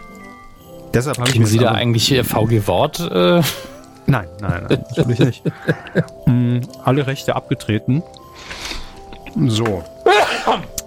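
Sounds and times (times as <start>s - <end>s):
speech: 0.9s - 8.6s, 9.3s - 10.7s
laughter: 1.3s - 6.6s
person sneezing from Christmas-time allergy: 10.1s - 10.8s.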